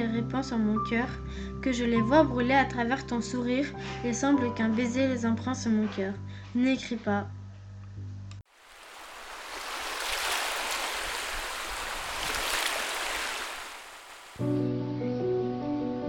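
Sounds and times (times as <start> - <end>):
soft music: 0.0 - 8.2, 14.4 - 16.0
speech: 0.3 - 7.4
water lapping and splashing: 8.5 - 14.4.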